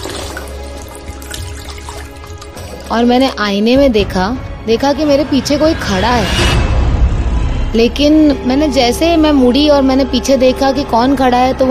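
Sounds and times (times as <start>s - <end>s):
water running at a washroom sink: 0.0s - 3.4s
speech: 2.9s - 6.6s, 7.7s - 11.7s.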